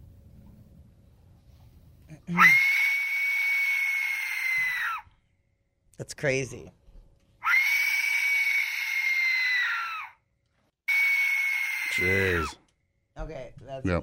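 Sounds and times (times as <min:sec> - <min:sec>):
speech: 0:02.3 - 0:02.7, 0:06.0 - 0:06.8, 0:12.0 - 0:12.6, 0:13.2 - 0:14.0
Aztec death whistle shrieking: 0:02.3 - 0:05.0, 0:07.4 - 0:10.2, 0:10.9 - 0:12.6.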